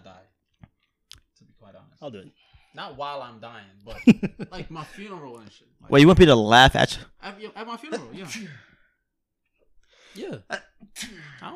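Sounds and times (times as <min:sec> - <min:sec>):
speech: 0:02.0 - 0:08.7, 0:10.2 - 0:11.5
laughter: 0:03.9 - 0:05.1
sneeze: 0:11.0 - 0:11.3.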